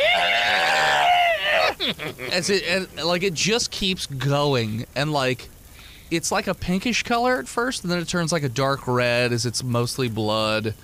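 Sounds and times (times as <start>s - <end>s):
person voicing a strained gurgling scream: 0.0s - 2.4s
laughter: 1.4s - 3.0s
speech: 1.8s - 10.8s.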